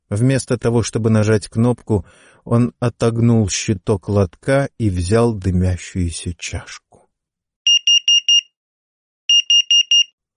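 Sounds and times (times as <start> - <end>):
speech: 0.1 - 6.8
vending machine malfunction alarm high-pitched electronic beeps: 7.7 - 8.6, 9.3 - 10.2.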